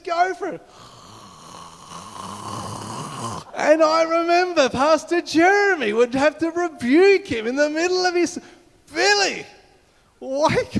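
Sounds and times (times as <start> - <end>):
speech: 0.3 - 1.0, 3.7 - 9.6, 10.2 - 10.7
man imitating loud snoring with a constricted windpipe: 0.7 - 3.6.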